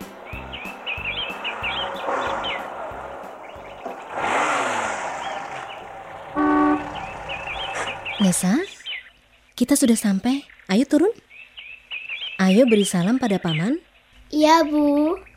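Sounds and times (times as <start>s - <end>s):
family car driving to a village: 0.0s - 9.0s
birds chirping: 0.0s - 15.3s
car horn toot: 6.1s - 8.0s
speech: 8.2s - 8.7s, 9.6s - 11.2s, 12.5s - 15.3s.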